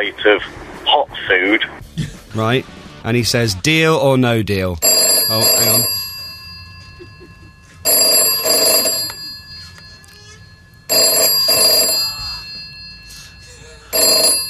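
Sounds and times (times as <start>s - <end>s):
speech: 0.0s - 6.0s
loud telephone bell ringing: 4.8s - 14.4s.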